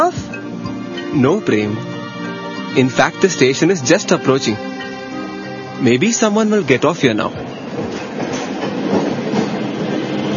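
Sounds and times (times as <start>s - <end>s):
train rumbling on rails: 0.0s - 10.3s
speech: 1.2s - 1.9s, 2.8s - 4.7s, 5.8s - 7.5s
clatter of train wheels: 7.2s - 10.3s.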